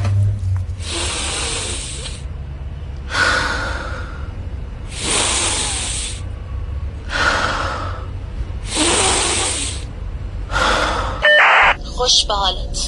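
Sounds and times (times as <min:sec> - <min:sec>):
deep breaths drawn after a window has been opened: 0:00.7 - 0:02.3, 0:03.0 - 0:11.3
speech: 0:12.1 - 0:12.8.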